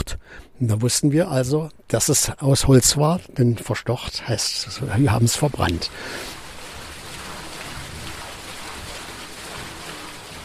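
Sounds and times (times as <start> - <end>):
speech: 0.6 - 6.4
large mill water wheel almost four metres in diameter turning in rushing water: 4.7 - 10.4.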